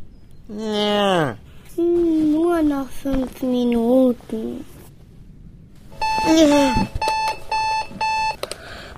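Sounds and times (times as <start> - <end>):
speech: 0.5 - 1.4, 2.6 - 4.8, 6.2 - 7.0
alarm clock beeping in rapid bursts: 5.9 - 8.4.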